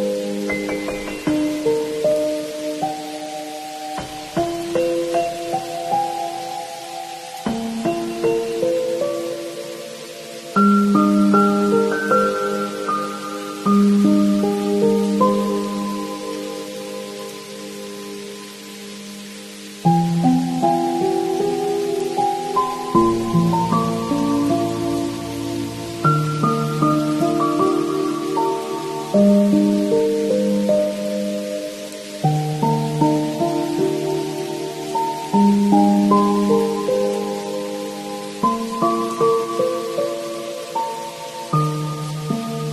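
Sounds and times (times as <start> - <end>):
soft piano music in a mellow middle register: 0.0 - 42.7
steady hiss of rain: 0.0 - 42.7.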